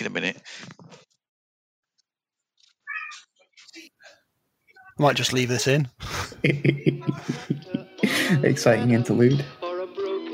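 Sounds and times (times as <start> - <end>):
pet cats meowing: 2.9 - 3.2
speech: 5.0 - 9.6
laughter: 6.0 - 8.7.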